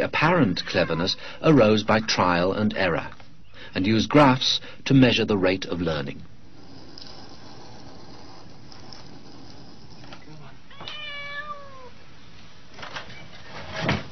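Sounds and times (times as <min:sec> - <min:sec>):
speech: 0:00.0 - 0:06.3
low hiss: 0:00.0 - 0:14.0
cat meowing: 0:00.5 - 0:01.2, 0:10.7 - 0:12.0.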